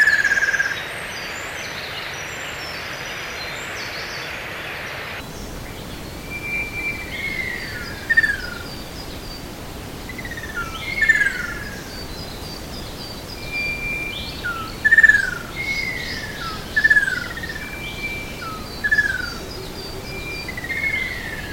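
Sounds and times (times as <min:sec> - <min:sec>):
constant background hiss: 0:00.7 - 0:21.5
bird giving thin descending whistled notes: 0:05.4 - 0:21.5.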